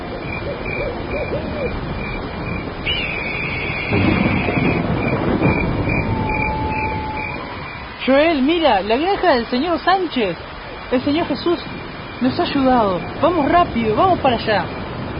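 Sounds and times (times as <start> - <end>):
rain-like hiss of a thunderstorm in a forest: 0.0 - 15.1
rumble of thunder in a forest: 0.0 - 15.1
owl-like hoot in a forest: 0.1 - 1.8
speech: 1.2 - 1.9, 3.9 - 4.2, 8.0 - 14.8.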